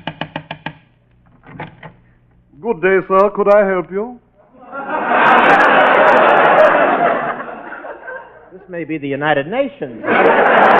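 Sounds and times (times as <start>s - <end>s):
sharp knocks on a door: 0.0s - 0.8s
speech: 2.6s - 4.2s, 8.6s - 10.7s
laughter: 4.4s - 8.6s, 10.0s - 10.7s.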